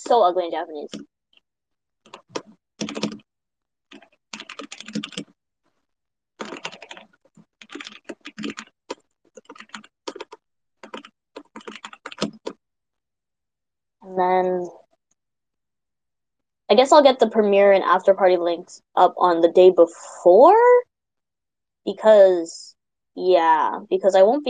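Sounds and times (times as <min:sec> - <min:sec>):
speech: 0:00.1 - 0:01.2, 0:14.2 - 0:14.8, 0:16.7 - 0:20.8, 0:21.8 - 0:24.4
typing on a computer keyboard: 0:02.1 - 0:03.3, 0:03.9 - 0:05.4, 0:06.4 - 0:12.6.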